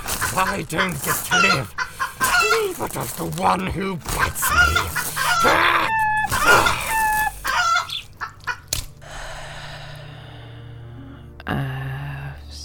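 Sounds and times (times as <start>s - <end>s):
scuffling rustle: 0.0s - 8.2s
chicken crowing like a rooster: 0.1s - 2.8s, 4.4s - 8.6s
speech: 0.4s - 1.8s, 2.4s - 6.8s.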